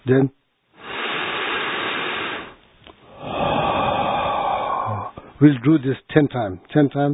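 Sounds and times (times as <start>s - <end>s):
speech: 0.0s - 0.4s, 5.4s - 7.1s
long slow exhale through the mouth during a meditation breathing exercise: 0.8s - 5.3s.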